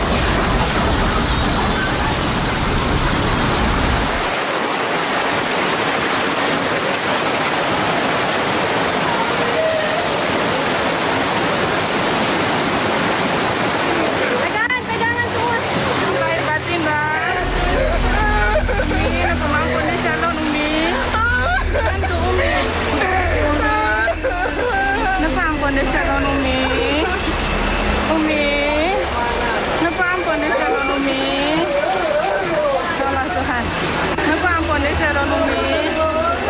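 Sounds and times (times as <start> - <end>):
deep rumble: 0.0 - 4.3, 17.3 - 30.4
rushing floodwater roar: 0.0 - 36.4
laughter: 17.2 - 27.6, 30.0 - 33.5.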